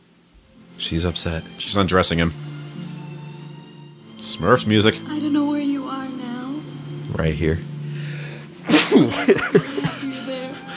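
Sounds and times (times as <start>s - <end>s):
speech: 0.8s - 2.5s, 4.4s - 5.4s, 7.2s - 7.7s, 8.9s - 9.9s
laughter: 8.6s - 10.7s
sneeze: 8.7s - 9.2s.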